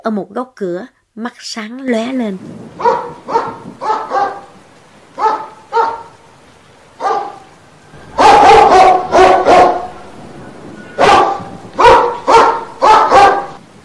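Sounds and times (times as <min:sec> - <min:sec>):
speech: 0:00.0 - 0:03.1
large hunting dog guarding a doorway barking loudly: 0:02.8 - 0:06.2, 0:07.0 - 0:10.0, 0:10.9 - 0:13.6.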